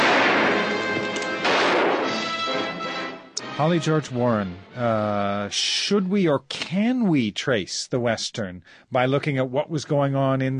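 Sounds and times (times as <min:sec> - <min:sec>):
gunfire barrage from a Western film scene: 0:00.0 - 0:02.7
speech: 0:03.6 - 0:10.5.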